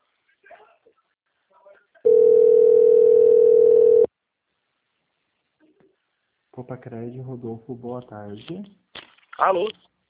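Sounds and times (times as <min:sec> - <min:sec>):
telephone ringback tone on an outgoing call: 0:02.1 - 0:04.1
speech: 0:06.6 - 0:08.8, 0:09.4 - 0:09.9.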